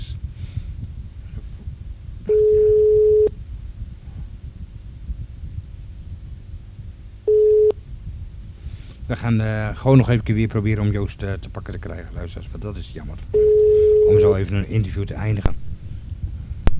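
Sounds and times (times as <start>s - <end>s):
low rumbling hiss: 0.0s - 16.7s
telephone busy tone beeps after a dropped call: 2.3s - 3.3s, 7.3s - 7.8s, 13.4s - 14.3s
speech: 9.1s - 15.6s.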